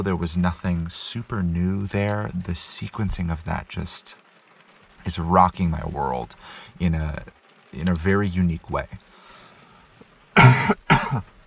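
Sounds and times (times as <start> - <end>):
speech: 0.0 - 4.2, 5.0 - 9.1, 10.4 - 11.4
throaty coughs: 10.4 - 11.3.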